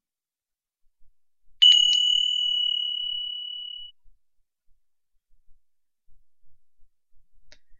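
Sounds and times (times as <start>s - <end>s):
bright bell strike signalling the start of an exercise: 1.6s - 3.9s.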